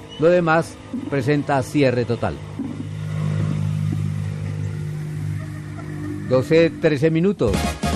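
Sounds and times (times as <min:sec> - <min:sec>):
speech: 0:00.2 - 0:02.7, 0:06.3 - 0:07.8
motorcycles passing along a landslide-closed road toward Versalles: 0:01.1 - 0:07.0.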